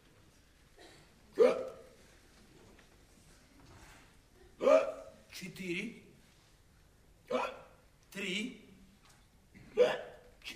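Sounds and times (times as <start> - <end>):
sharp loud hiccups: 0.8 - 2.0, 4.6 - 5.2, 7.3 - 7.8, 9.6 - 10.2
speech: 5.4 - 6.1.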